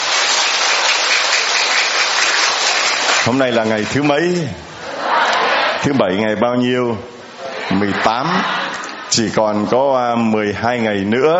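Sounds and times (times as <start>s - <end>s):
crowd applauding in a room: 0.0s - 4.1s
speech: 3.2s - 4.7s, 5.8s - 7.1s, 7.7s - 11.3s
laughter: 7.4s - 9.7s.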